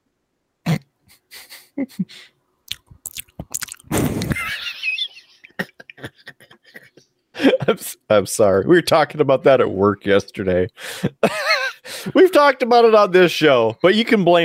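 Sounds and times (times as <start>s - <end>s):
speech: 1.8s - 2.4s, 7.7s - 11.4s, 12.0s - 14.4s
drinking beer in sips gulps and swallows: 2.7s - 4.3s
laughter: 3.9s - 8.0s, 11.0s - 12.1s.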